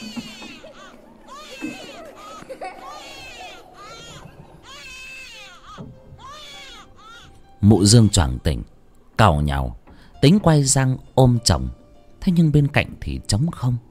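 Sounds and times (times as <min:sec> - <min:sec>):
children laughing and crying in the distance: 0:00.0 - 0:08.4
speech: 0:07.6 - 0:13.8.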